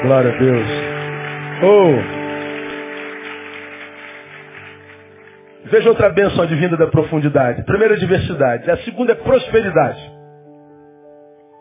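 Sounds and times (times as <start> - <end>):
church audience applause: 0.0 - 6.6
speech: 0.1 - 0.9, 1.6 - 2.2, 5.7 - 10.2.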